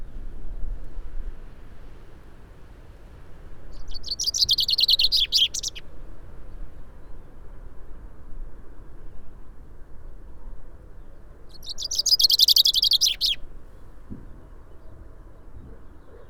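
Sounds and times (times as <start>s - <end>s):
common chaffinch Fringilla coelebs singing: 3.7s - 5.9s, 11.5s - 13.4s.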